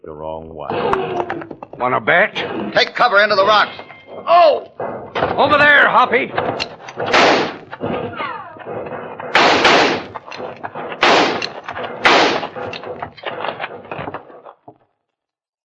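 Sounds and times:
speech: 0.1s - 7.5s
volley of gunfire among canyon rocks: 6.4s - 13.0s.

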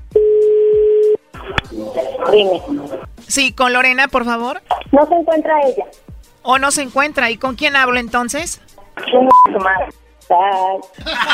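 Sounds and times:
telephone tone as a number is dialed: 0.1s - 1.2s
speech: 2.2s - 11.3s
laughter: 11.0s - 11.3s.

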